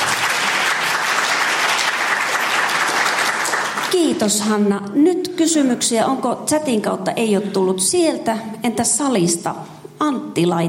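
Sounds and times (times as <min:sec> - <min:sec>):
audience applause: 0:00.0 - 0:04.0
speech: 0:03.9 - 0:10.6.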